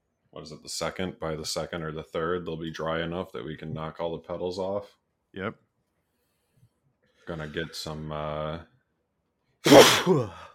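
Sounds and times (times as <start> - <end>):
speech: 0.4 - 5.6, 7.2 - 8.7, 9.6 - 10.5
sneeze: 9.6 - 10.4.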